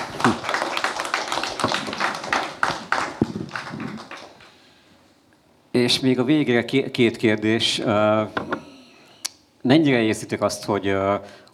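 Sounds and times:
audience applauding: 0.0 - 4.6
speech: 5.8 - 8.5, 9.7 - 11.5.

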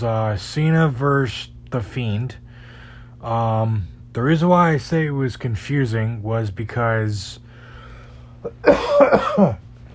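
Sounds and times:
speech: 0.0 - 2.4, 3.2 - 7.4, 8.4 - 9.6
person coughing: 8.4 - 9.7.

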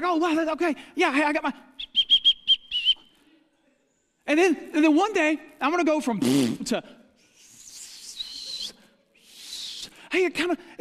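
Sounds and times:
speech: 0.0 - 2.0, 4.3 - 7.0, 10.1 - 10.7
person whistling a quick bright tune: 1.8 - 3.1, 8.0 - 8.8.

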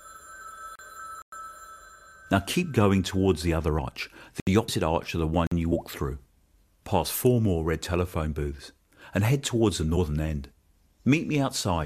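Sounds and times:
old telephone bell ringing in a red telephone booth: 0.0 - 3.2
speech: 2.3 - 6.2, 6.9 - 11.8.

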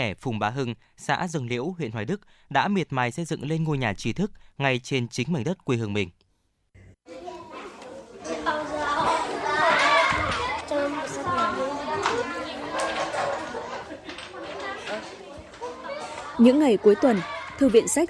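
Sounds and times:
speech: 0.0 - 6.2, 16.4 - 18.0
children laughing and playing at village library: 7.1 - 18.0.

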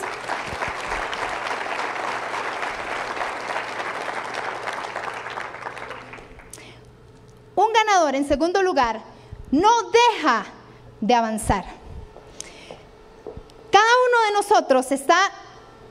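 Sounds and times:
room full of people applauding: 0.0 - 6.7
speech: 8.0 - 11.8, 14.3 - 15.4.

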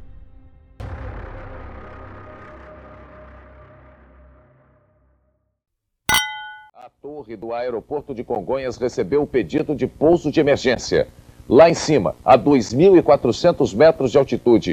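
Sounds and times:
bright clang ringing: 6.1 - 6.7
glasses clinking in a toast: 6.1 - 6.7
speech: 7.0 - 14.7.

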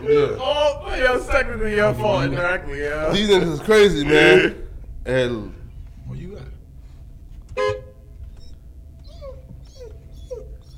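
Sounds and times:
speech: 0.0 - 6.3
low rumble: 0.0 - 10.7
loud honk-like blast: 7.5 - 8.1
aggressive dog yelping: 8.3 - 10.7.

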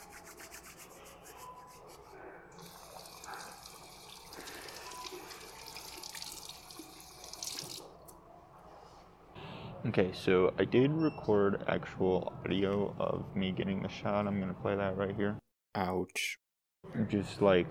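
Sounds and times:
hands rubbing and scrubbing beneath the stream: 0.0 - 2.1
running tap water pouring into a sink: 2.6 - 8.0
speech: 9.9 - 17.6.

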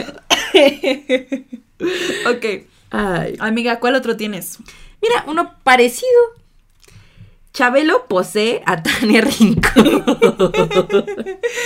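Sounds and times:
speech: 0.0 - 6.4, 7.6 - 11.6
person coughing: 0.2 - 0.6
laughter: 9.6 - 11.6.

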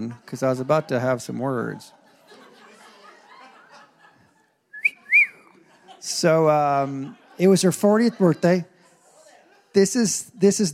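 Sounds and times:
speech: 0.0 - 2.0, 6.0 - 8.7, 9.8 - 10.7
laughter: 0.0 - 10.7
person in the audience whistling: 4.7 - 5.5
rising-and-falling wolf whistle from the audience: 4.8 - 5.5.

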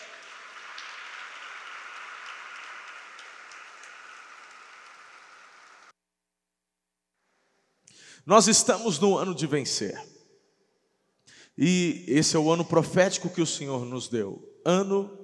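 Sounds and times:
congregation applauding: 0.0 - 5.9
speech: 8.2 - 10.2, 11.6 - 15.2.

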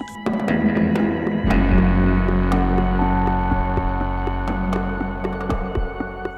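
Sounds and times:
steady martial drum strikes: 0.0 - 6.3
thick sustained synth drone: 0.0 - 6.3
low rumble: 1.4 - 6.3.

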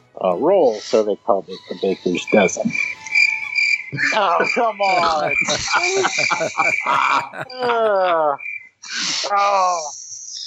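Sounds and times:
speech: 0.2 - 3.0, 3.9 - 10.0
overlapping voices talking and exclaiming: 0.2 - 8.4, 9.0 - 9.9
chorus of crickets chirping: 1.7 - 7.2
laughter: 3.4 - 8.4.

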